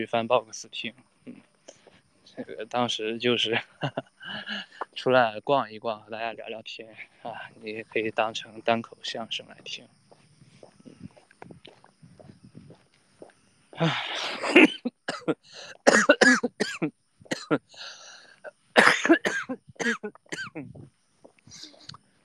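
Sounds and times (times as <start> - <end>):
speech: 0.0 - 1.1, 2.4 - 10.0, 13.8 - 18.0
quieter breathy sounds: 1.2 - 2.5, 4.2 - 5.0, 10.4 - 14.4, 15.4 - 15.9, 17.7 - 18.5
harsh coughs from a person with a cold: 13.8 - 17.6, 18.8 - 20.8.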